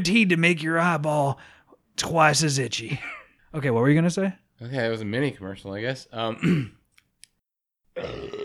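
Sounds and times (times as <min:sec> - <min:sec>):
speech: 0:00.0 - 0:06.8, 0:08.0 - 0:08.4
person burping: 0:06.3 - 0:06.8, 0:08.0 - 0:08.4.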